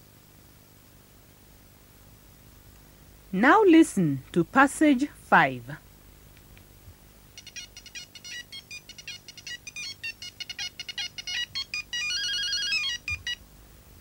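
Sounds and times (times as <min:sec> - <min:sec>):
speech: 0:03.3 - 0:05.8
bright electronic phone ringtone of short repeated beeps and warbling trill: 0:07.4 - 0:13.4.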